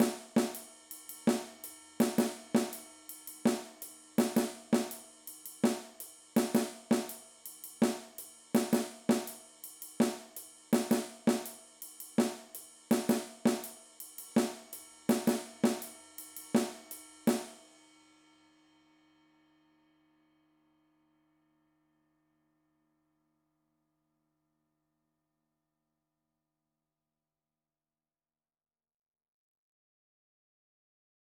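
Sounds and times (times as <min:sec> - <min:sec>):
busy snare drum comping: 0:00.0 - 0:00.6, 0:01.3 - 0:02.8, 0:03.5 - 0:05.0, 0:05.6 - 0:07.2, 0:07.8 - 0:09.4, 0:10.0 - 0:11.6, 0:12.2 - 0:13.7, 0:14.4 - 0:15.9, 0:16.6 - 0:17.6.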